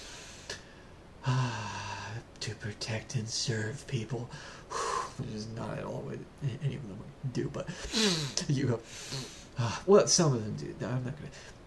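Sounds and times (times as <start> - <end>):
person inhaling deeply: 0.0 - 2.2, 4.3 - 5.2, 7.7 - 9.8
speech: 2.6 - 4.6, 5.2 - 11.6.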